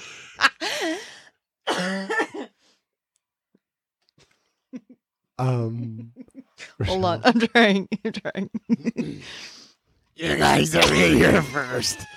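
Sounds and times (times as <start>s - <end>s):
person clearing throat: 1.7s - 2.5s
person coughing: 1.7s - 2.6s
speech: 5.4s - 6.2s, 6.8s - 9.5s, 10.2s - 12.1s.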